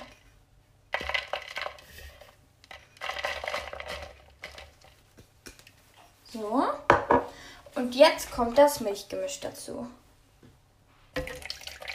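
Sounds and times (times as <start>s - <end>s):
fresh yeast crumbling into a mixing bowl: 0.9s - 5.8s
speech: 6.4s - 6.9s, 7.8s - 10.0s.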